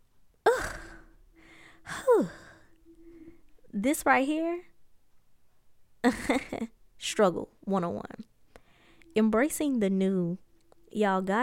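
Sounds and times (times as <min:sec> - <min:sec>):
heavy breathing from someone catching their breath: 0:00.5 - 0:03.6, 0:08.5 - 0:09.1
speech: 0:03.8 - 0:04.7, 0:06.0 - 0:08.3, 0:09.2 - 0:11.4.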